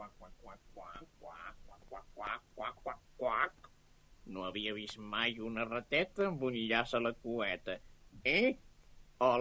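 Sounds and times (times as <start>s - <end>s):
voice imitating a duck quacking in the water of a stream: 0.0s - 3.6s
speech: 4.3s - 9.4s.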